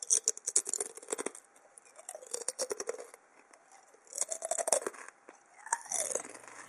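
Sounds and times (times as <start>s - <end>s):
chewing crunchy potato chips: 0.0s - 6.6s.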